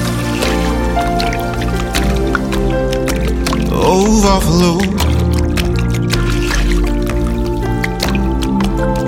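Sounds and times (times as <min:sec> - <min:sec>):
water dripping and splashing: 0:00.0 - 0:09.0.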